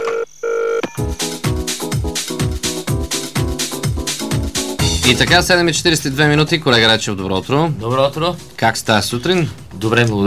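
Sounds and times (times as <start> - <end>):
electronic telephone dialing tones: 0.0 - 1.0
radio jingle music with thumping bass beat: 1.0 - 6.5
speech: 5.1 - 10.2.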